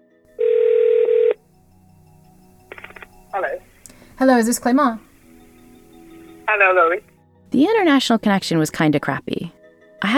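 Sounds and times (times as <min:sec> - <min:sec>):
loud steady telephone tone: 0:00.4 - 0:01.4, 0:02.7 - 0:03.8, 0:06.2 - 0:07.1
speech: 0:03.4 - 0:05.1, 0:06.6 - 0:10.1.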